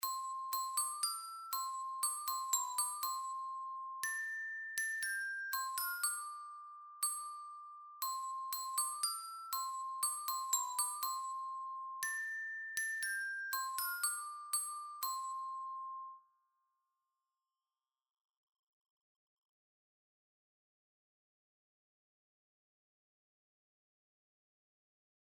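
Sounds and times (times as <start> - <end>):
alto glockenspiel melody with accompaniment: 0.0 - 16.2.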